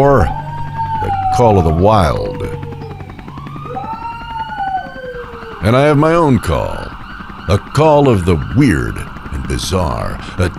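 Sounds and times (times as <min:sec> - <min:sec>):
speech: 0:00.0 - 0:00.4, 0:01.4 - 0:02.7, 0:05.6 - 0:06.9, 0:07.5 - 0:10.5
sirens wailing: 0:02.8 - 0:09.9.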